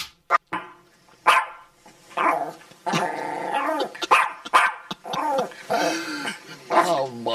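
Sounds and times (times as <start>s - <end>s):
small terrier short sharp barks and yips: 0.3s - 2.6s, 3.6s - 5.5s
small terrier growling and snarling: 2.2s - 4.0s, 5.0s - 6.1s.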